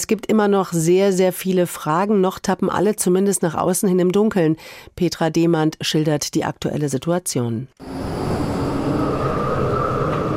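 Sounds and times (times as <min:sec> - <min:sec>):
speech: 0:00.0 - 0:08.3
faint metallic whine of tram wheels on rails: 0:07.8 - 0:10.3
trams rumbling across a city square in Darmstadt: 0:07.8 - 0:10.3.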